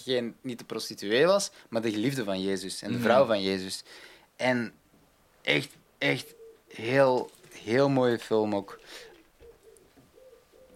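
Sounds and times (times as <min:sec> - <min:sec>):
speech: 0:00.0 - 0:04.8, 0:05.4 - 0:09.1
pigeons cooing: 0:06.0 - 0:07.8, 0:08.5 - 0:10.7.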